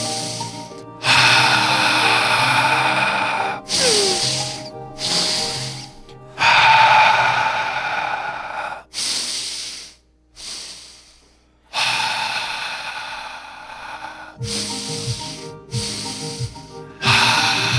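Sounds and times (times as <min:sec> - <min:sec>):
person breathing deeply in and out: 0:00.0 - 0:17.7.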